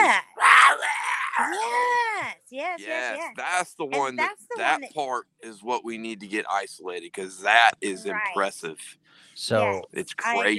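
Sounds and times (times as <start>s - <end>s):
long wild scream: 0.0s - 1.5s
laughter: 1.4s - 10.5s
speech: 2.6s - 10.5s.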